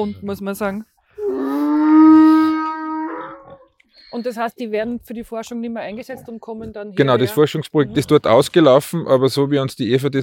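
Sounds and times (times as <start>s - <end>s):
speech: 0.0s - 1.6s, 4.1s - 10.2s
donkey braying: 1.2s - 3.8s.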